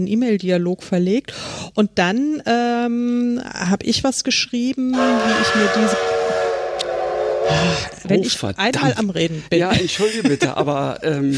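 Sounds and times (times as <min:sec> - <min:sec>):
speech: 0:00.0 - 0:06.2, 0:07.5 - 0:11.3
steam train whistle used as a one-hour signal: 0:04.9 - 0:08.2.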